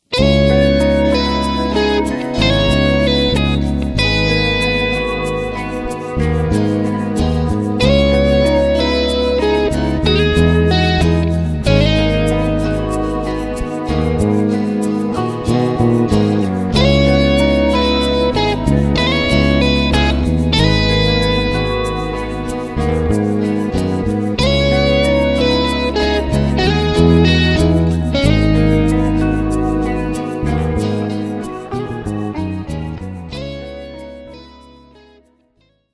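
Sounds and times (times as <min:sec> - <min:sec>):
arpeggiated guitar band: 0:00.0 - 0:35.4.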